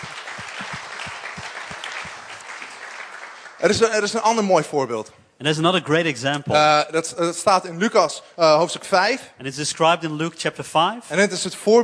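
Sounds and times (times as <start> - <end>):
audience applause: 0.0 - 4.1
speech: 3.6 - 11.8.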